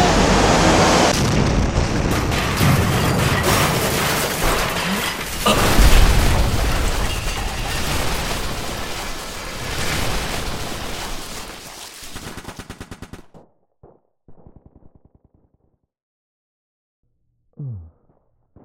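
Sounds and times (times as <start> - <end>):
missile exploding: 0.2 - 4.8, 5.5 - 9.0
crackling gunfire: 1.1 - 15.6.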